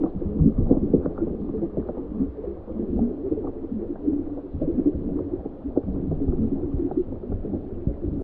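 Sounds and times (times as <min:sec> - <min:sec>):
calm scuba diving sounds: 0:00.0 - 0:08.2.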